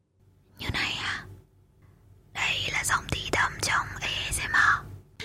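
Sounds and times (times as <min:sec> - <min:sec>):
ASMR whispering close to the microphone: 0:00.6 - 0:01.3, 0:02.3 - 0:04.9.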